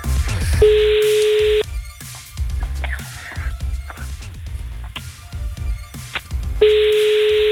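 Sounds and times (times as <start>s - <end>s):
rhythmic music: 0.0s - 7.4s
outgoing phone call ringback tone, steady buzzing: 0.6s - 1.6s, 6.6s - 7.4s.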